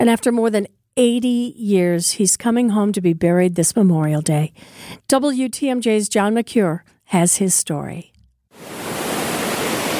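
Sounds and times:
speech: 0:00.0 - 0:08.8
surf noise: 0:08.6 - 0:09.9.

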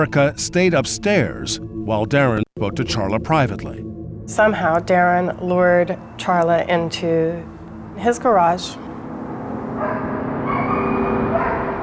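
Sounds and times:
speech: 0:00.0 - 0:08.9
dog yelping and barking frantically at a home: 0:09.8 - 0:11.8.

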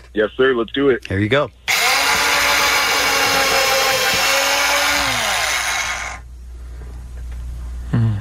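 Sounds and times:
speech: 0:00.1 - 0:01.6
power drill whirring: 0:01.7 - 0:06.2.

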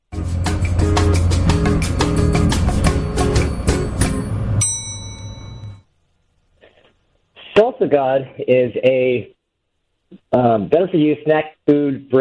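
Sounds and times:
brief punchy elevator-pitch music beat with drums and low bassline: 0:00.1 - 0:04.6
single bright bell ding: 0:03.0 - 0:05.9
speech: 0:07.8 - 0:09.4, 0:10.3 - 0:12.2.

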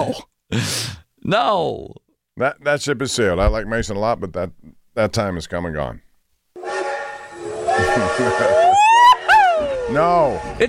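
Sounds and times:
speech: 0:00.1 - 0:06.0, 0:08.0 - 0:08.8, 0:09.9 - 0:10.6
steam train whistle with a rich reedy tone: 0:06.6 - 0:10.6.

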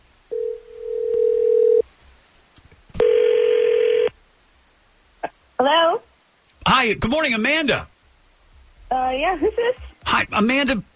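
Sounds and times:
telephone dial tone: 0:00.3 - 0:01.8, 0:03.0 - 0:04.1
speech: 0:06.8 - 0:07.9, 0:08.9 - 0:10.9.

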